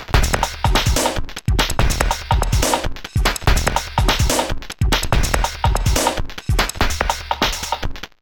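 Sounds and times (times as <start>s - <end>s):
fast dubstep song: 0.2s - 7.8s.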